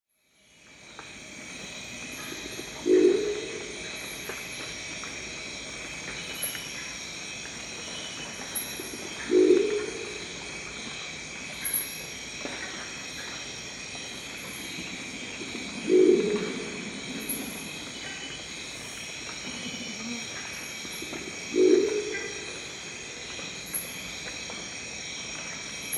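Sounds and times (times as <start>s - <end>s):
crested owl: 2.2s - 4.4s, 8.5s - 10.4s, 15.6s - 18.4s, 19.4s - 23.1s.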